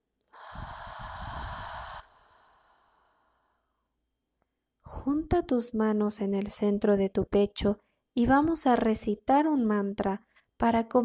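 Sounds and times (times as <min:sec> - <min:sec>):
slow exhale of breath during a guided meditation breathing exercise: 0:00.3 - 0:03.8
speech: 0:05.0 - 0:11.0.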